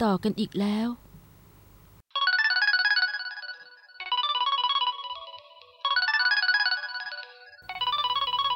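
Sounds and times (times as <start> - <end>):
speech: 0.0 - 1.0
mobile phone ringtone with bright electronic melody: 2.1 - 8.5.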